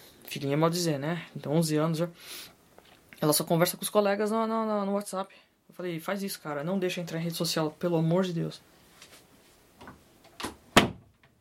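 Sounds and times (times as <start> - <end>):
speech: 0.4 - 2.6, 3.2 - 8.7
soft knocks and shuffles: 8.8 - 10.1
door being closed: 10.4 - 11.2.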